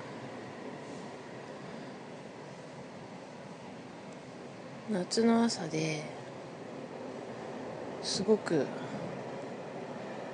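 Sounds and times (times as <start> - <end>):
train arriving: 0.0 - 10.3
speech: 4.9 - 6.2, 8.1 - 8.9.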